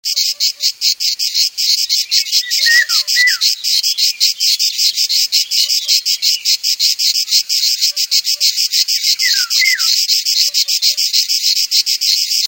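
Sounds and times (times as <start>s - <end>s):
cicadas: 0.0s - 12.4s.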